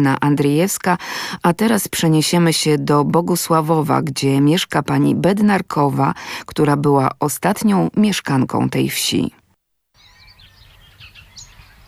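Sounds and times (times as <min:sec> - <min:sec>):
speech: 0:00.0 - 0:09.4
birds singing in the village of Bogusławów: 0:10.0 - 0:11.8.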